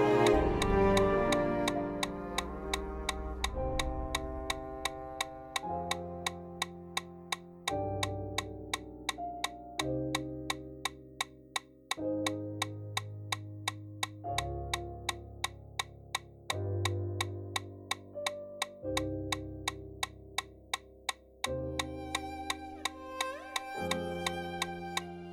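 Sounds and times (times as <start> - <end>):
low sustained musical backing: 0.0 - 6.8, 21.7 - 25.3
metronome ticking at 170 steps per minute: 0.2 - 25.3.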